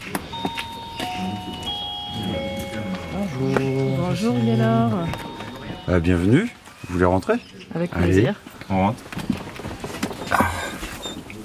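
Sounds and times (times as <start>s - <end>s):
small lodging doorbell ding-dong chime: 0.3s - 6.3s
speech: 3.4s - 5.2s, 5.8s - 9.3s.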